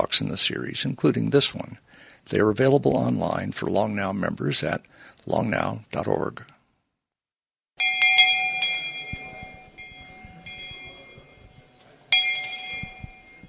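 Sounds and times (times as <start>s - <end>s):
speech: 0.1s - 6.5s
hand bell ringing: 7.8s - 13.4s.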